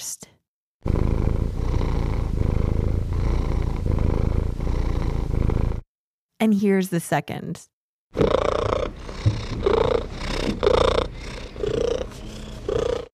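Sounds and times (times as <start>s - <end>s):
relaxed male domestic cat purring to solicit food: 0.8s - 5.8s, 8.2s - 13.1s
speech: 6.4s - 8.6s.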